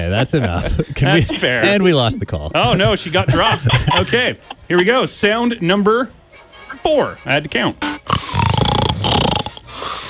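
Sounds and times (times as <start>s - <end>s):
speech: 0.0s - 8.3s
laughter: 0.2s - 5.2s
person snoring: 8.1s - 10.0s.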